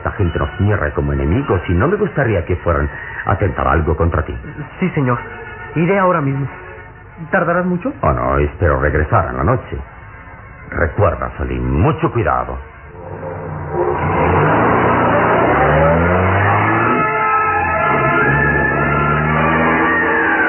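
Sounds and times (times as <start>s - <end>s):
speech: 0.2s - 6.6s, 7.2s - 9.9s, 10.7s - 13.8s
sports car engine revving while speeding along a dusty road: 12.9s - 20.3s.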